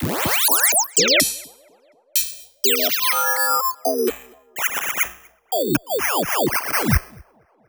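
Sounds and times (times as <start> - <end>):
break beat with formant effect: 1.0 - 1.6, 2.2 - 7.1.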